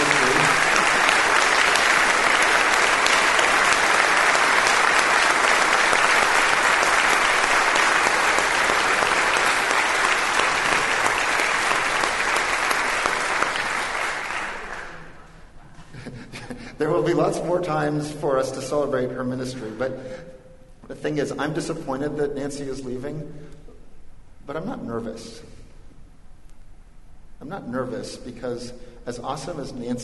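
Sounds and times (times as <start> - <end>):
large audience clapping in sustained applause: 0.0 - 15.3
speech: 17.1 - 20.3, 20.9 - 23.6, 24.5 - 25.6, 27.4 - 30.0.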